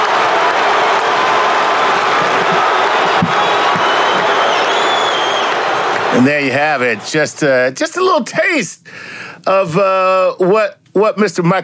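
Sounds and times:
basketball arena crowd cheering after a Lakers shot: 0:00.0 - 0:07.8
speech: 0:06.2 - 0:11.6.

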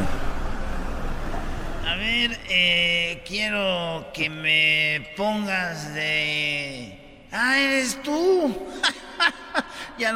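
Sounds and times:
Volkswagen car engine rumble arriving: 0:00.0 - 0:03.2
speech: 0:02.0 - 0:10.1
laughter: 0:08.7 - 0:10.1.

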